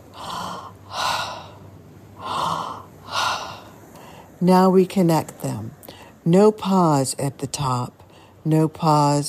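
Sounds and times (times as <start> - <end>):
deep belly breathing, inhale and exhale: 0.0 - 4.4
speech: 4.4 - 9.2.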